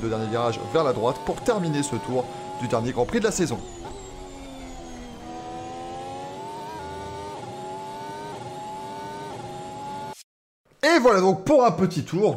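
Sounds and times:
speech: 0.0 - 3.9, 11.0 - 12.3
Formula One car engine whine on a lap of the Abu Dhabi circuit: 0.0 - 10.2.

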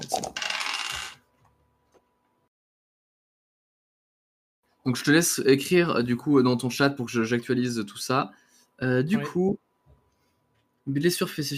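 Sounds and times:
seven dice rolling during a tabletop role-playing game: 0.0 - 1.2
speech: 4.8 - 9.6, 10.9 - 11.5.

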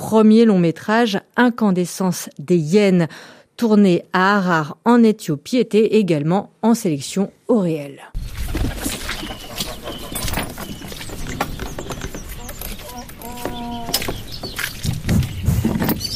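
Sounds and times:
speech: 0.1 - 8.9
birds chirping and twittering: 8.2 - 16.1
rustling: 8.2 - 16.1
clattering knocks: 8.6 - 16.1.

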